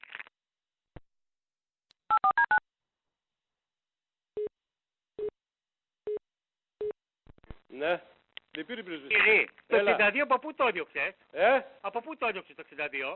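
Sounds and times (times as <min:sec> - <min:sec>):
telephone keypad dialing beeps: 0:02.1 - 0:02.6
speech: 0:07.8 - 0:13.1.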